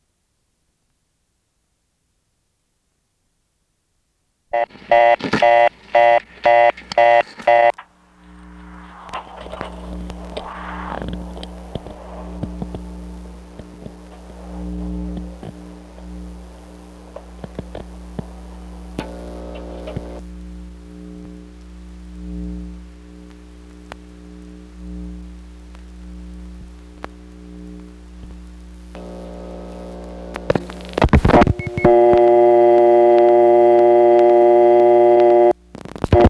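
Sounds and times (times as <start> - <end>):
steady hum on the telephone line: 4.4 - 36.2
telephone tone bursts through step-by-step switching exchange: 4.6 - 7.8, 31.4 - 35.6.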